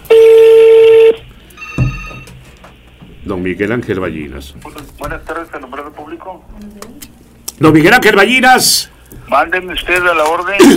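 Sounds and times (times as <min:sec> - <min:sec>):
loud steady electronic telephone tone: 0:00.1 - 0:02.3
speech: 0:03.3 - 0:05.3, 0:06.2 - 0:10.7.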